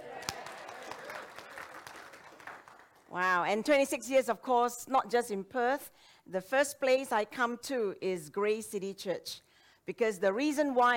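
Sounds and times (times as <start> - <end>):
crowd applauding: 0.0 - 3.1
speech: 3.1 - 10.9.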